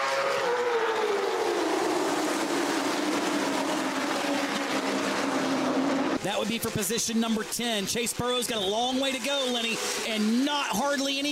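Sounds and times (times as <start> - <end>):
stock car engines racing on a speedway: 0.0 - 11.3
speech: 6.4 - 11.3.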